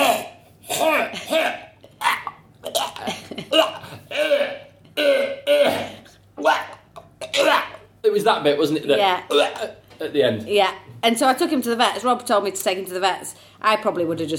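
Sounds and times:
person imitating a dog retching with gagging throat-clearing hacks: 0:00.0 - 0:07.9, 0:09.3 - 0:09.8
speech: 0:08.2 - 0:14.3.

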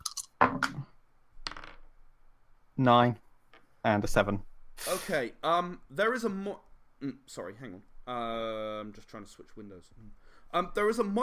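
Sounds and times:
three dice clattering across a table: 0:01.4 - 0:01.9
speech: 0:02.8 - 0:03.2, 0:03.8 - 0:11.2.

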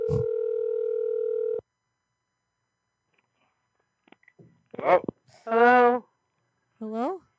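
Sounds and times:
electronic ringback tone from an outgoing phone call: 0:00.0 - 0:01.6
speech: 0:00.1 - 0:00.3, 0:04.8 - 0:05.1.

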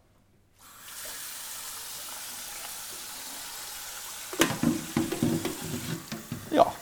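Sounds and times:
water pouring into a kettle: 0:00.6 - 0:06.8
metallic clanks and knocks of a kettle being handled: 0:04.4 - 0:06.6.

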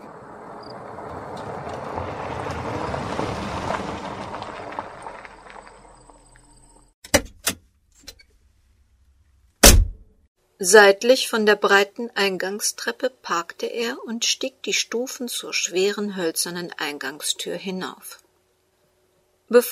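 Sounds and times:
heavy car engine starting: 0:00.0 - 0:06.1
sharp knocks and thuds: 0:09.6 - 0:10.1
speech: 0:10.6 - 0:18.2, 0:19.5 - 0:19.7.

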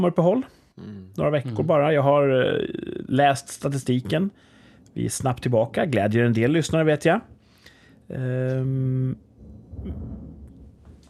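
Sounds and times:
speech: 0:00.0 - 0:07.3, 0:08.1 - 0:10.2
deep low rumble of thunder: 0:09.2 - 0:11.0.

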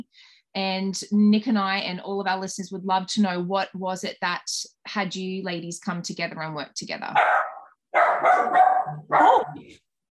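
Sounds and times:
speech: 0:00.0 - 0:07.5, 0:08.3 - 0:09.8
dog barking: 0:07.2 - 0:09.7.

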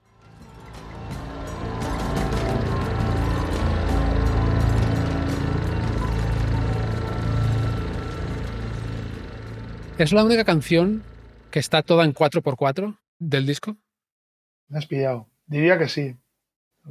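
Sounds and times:
small engine running with rattling mechanical clicks: 0:00.0 - 0:12.3
speech: 0:10.0 - 0:13.8, 0:14.7 - 0:16.2.

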